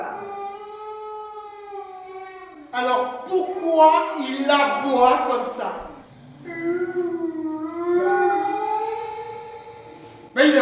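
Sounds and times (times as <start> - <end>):
dog howling mournfully from a well: 0.0 - 2.8, 6.2 - 10.4
speech: 2.8 - 7.1.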